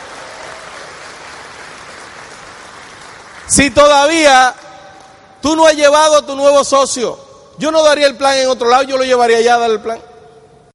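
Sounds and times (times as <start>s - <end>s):
audience applause: 0.0s - 3.6s
speech: 3.5s - 4.7s, 5.4s - 10.1s.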